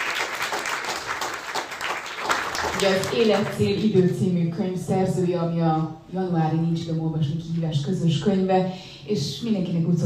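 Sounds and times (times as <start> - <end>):
audience applause welcoming an author at a book event: 0.0 - 3.5
speech: 2.8 - 10.0.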